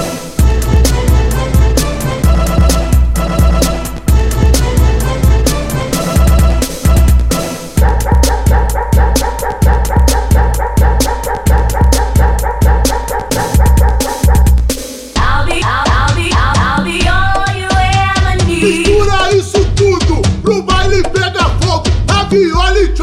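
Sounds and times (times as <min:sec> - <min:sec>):
loud driving dance track with heavy bass: 0:00.0 - 0:23.0
sampled barks of a big dog chopped into the beat: 0:07.8 - 0:14.6.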